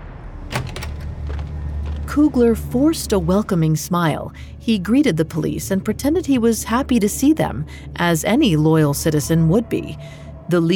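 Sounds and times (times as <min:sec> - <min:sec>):
office door latch rattle: 0:00.5 - 0:01.6
office door swinging open with wooden clunks: 0:00.5 - 0:02.0
speech: 0:02.1 - 0:10.7.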